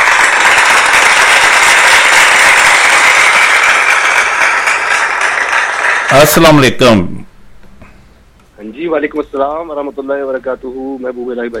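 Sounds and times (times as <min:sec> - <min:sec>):
crowd applauding: 0:00.0 - 0:06.8
speech: 0:06.1 - 0:07.3, 0:08.8 - 0:11.5.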